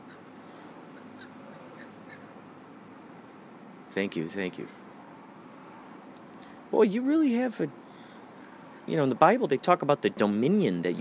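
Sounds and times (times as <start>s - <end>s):
crows cawing: 0.0s - 2.3s
outdoor noise: 0.0s - 10.9s
speech: 3.9s - 4.8s, 6.7s - 7.8s, 8.9s - 10.9s.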